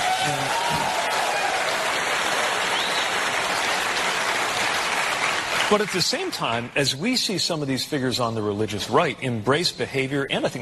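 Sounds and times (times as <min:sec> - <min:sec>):
applause from a large audience: 0:00.0 - 0:06.7
speech: 0:05.7 - 0:10.6.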